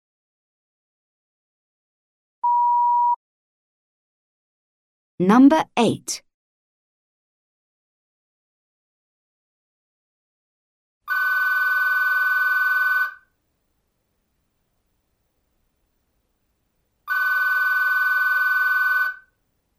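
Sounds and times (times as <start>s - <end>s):
speech: 5.2s - 6.3s
telephone ringing with an electronic trill: 11.1s - 13.3s, 17.1s - 19.3s.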